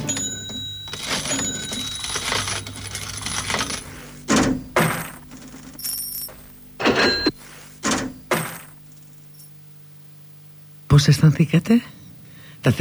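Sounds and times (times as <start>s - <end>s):
coins falling: 0.0s - 4.1s, 4.7s - 7.3s, 8.3s - 8.8s
cash register opening: 0.0s - 8.8s
speech: 11.0s - 12.0s, 12.6s - 12.8s.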